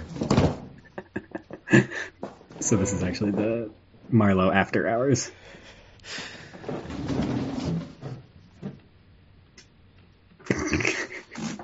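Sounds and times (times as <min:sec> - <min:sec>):
chairs being moved and rearranged by a man: 0:00.0 - 0:00.8, 0:02.2 - 0:03.7, 0:06.4 - 0:08.8
speech: 0:01.7 - 0:07.2.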